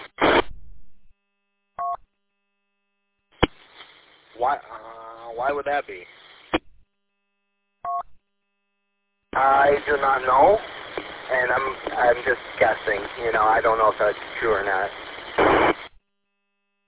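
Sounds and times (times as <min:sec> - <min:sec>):
burst of static over a narrow-band radio channel: 0:00.0 - 0:00.6, 0:03.4 - 0:06.7, 0:09.4 - 0:16.0
man talking over a narrow-band radio channel: 0:04.4 - 0:06.2, 0:09.4 - 0:15.8
speech: 0:04.4 - 0:06.2, 0:09.4 - 0:10.7, 0:11.3 - 0:15.0.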